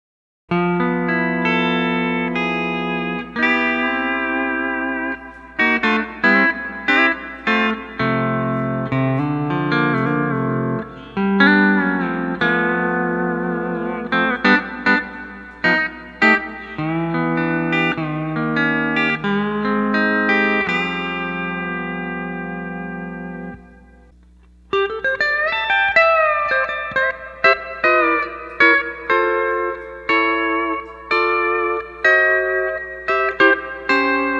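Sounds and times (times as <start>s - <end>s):
steel guitar strumming a C add 9 chord using the first string: 0.5s - 34.3s.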